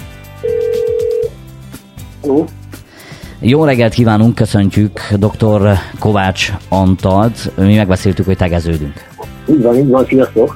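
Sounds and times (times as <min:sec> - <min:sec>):
telephone ringback tone on an outgoing call: 0:00.4 - 0:01.4
speech: 0:02.2 - 0:02.6, 0:03.4 - 0:10.5.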